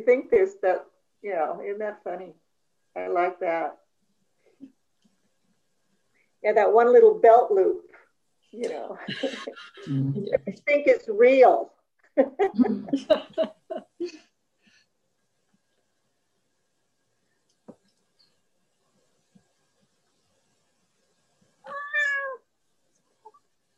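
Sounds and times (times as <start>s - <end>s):
speech: 0.0s - 3.8s, 6.4s - 14.3s
person laughing: 9.0s - 10.6s, 12.2s - 14.2s
cat meowing: 21.6s - 22.4s.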